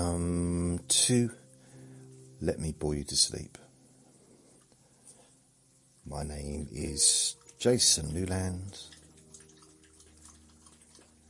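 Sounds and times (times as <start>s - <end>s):
low hum: 0.0s - 11.2s
speech: 0.9s - 1.4s, 2.4s - 3.6s, 6.1s - 9.0s
person drinking water: 8.9s - 11.2s.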